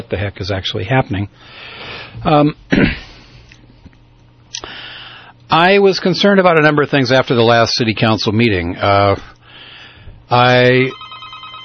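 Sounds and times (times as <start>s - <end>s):
speech: 0.0s - 3.1s, 5.5s - 9.4s, 10.3s - 11.0s
telephone ringing for an incoming call to a radio call-in show: 10.3s - 11.6s.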